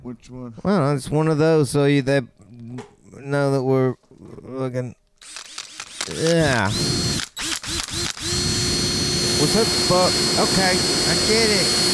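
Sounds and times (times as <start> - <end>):
speech: 0.0 - 5.4, 6.1 - 11.9
power drill whirring: 5.2 - 11.9.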